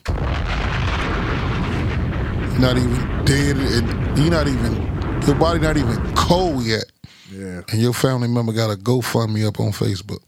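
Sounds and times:
bombs exploding sound effect: 0.0s - 6.8s
speech: 2.6s - 10.2s.

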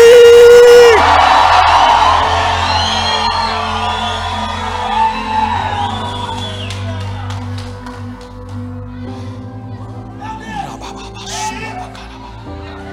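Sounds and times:
large crowd shouting and whooping for joy: 0.0s - 7.3s.

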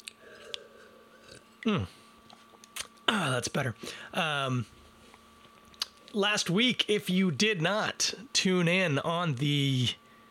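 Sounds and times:
person sipping beer: 0.1s - 2.9s
speech: 1.6s - 2.0s, 3.1s - 4.8s, 6.1s - 10.0s.

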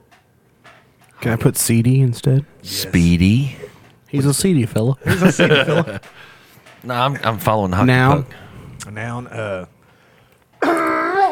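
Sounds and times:
speech: 1.2s - 9.7s
laughter: 5.0s - 6.3s
loud throat clearing with a drawn-out groaning tone: 10.6s - 11.3s.

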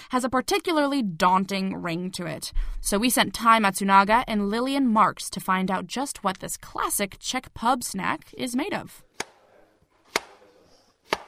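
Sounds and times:
speech: 0.1s - 9.1s
knife chopping onions and peppers on a cutting board: 10.1s - 11.2s.

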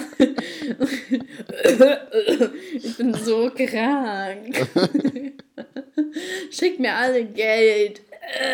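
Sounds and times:
speech: 0.2s - 8.5s
forced fake coughs: 1.4s - 2.6s.

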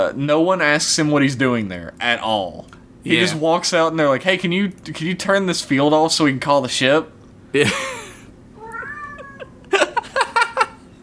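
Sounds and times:
speech: 0.0s - 7.9s
laughter: 7.6s - 8.3s, 9.2s - 10.9s
pet cat meowing indoors in another room: 8.6s - 9.7s.

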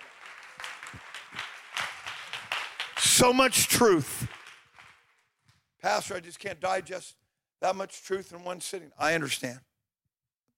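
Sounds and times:
crowd clapping in praise at a church revival service: 0.0s - 5.7s
speech: 3.1s - 4.4s, 5.8s - 9.7s.

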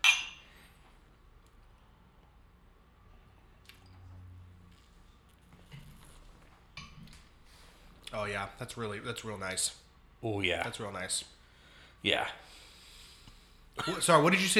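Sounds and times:
glasses of 90-proof spirit clinking in a toast: 0.0s - 0.5s
speech: 8.2s - 11.4s, 12.0s - 12.6s, 13.8s - 14.5s.

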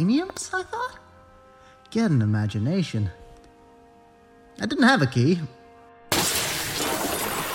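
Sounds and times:
speech: 0.0s - 1.0s, 1.9s - 3.2s, 4.6s - 5.6s
glass pane being kicked in and shattering: 6.1s - 7.5s.

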